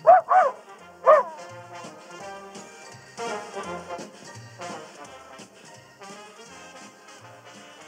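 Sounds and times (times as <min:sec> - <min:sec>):
small dog barking, yipping and whining: 0:00.0 - 0:01.5
music or ambient sound: 0:00.0 - 0:07.8.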